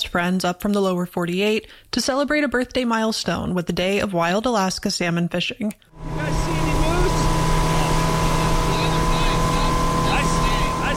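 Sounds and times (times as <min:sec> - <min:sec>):
speech: 0:00.1 - 0:06.6
motorboat engine droning on the choppy Kenai River in Alaska: 0:06.0 - 0:10.9.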